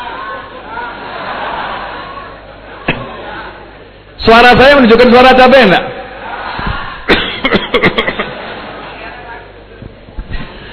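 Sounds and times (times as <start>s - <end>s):
laughter: 0.5s - 3.4s, 6.2s - 9.6s
speech: 4.2s - 5.9s
speaker's feigned cough during a talk at a religious gathering: 7.1s - 8.2s.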